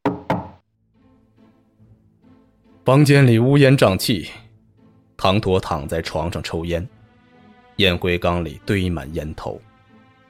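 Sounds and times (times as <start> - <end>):
heavy resonant knocking on a door: 0.0 - 0.6
speech: 2.9 - 4.4, 5.2 - 7.0, 7.8 - 9.7.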